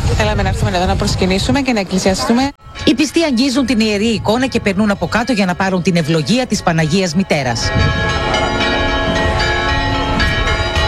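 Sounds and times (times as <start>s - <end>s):
speech: 0.2s - 8.2s
church bells pealing: 2.6s - 10.8s.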